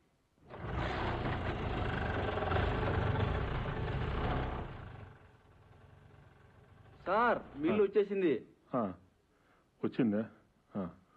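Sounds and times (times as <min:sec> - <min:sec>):
vehicle engine started and running: 0:00.4 - 0:07.7
speech: 0:07.1 - 0:09.0, 0:09.8 - 0:11.0.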